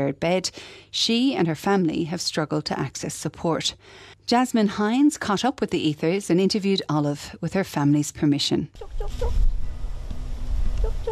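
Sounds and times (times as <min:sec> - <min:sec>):
speech: 0:00.0 - 0:09.6
chickens clucking on a family farm near Baralaba: 0:08.8 - 0:09.4, 0:10.8 - 0:11.1
low rumble: 0:08.8 - 0:11.1.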